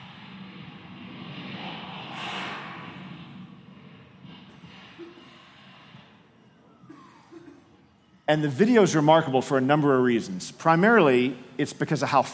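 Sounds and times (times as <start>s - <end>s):
F-18 fighter jet roaring overhead at an air show: 0.0s - 5.0s
speech: 8.3s - 12.3s.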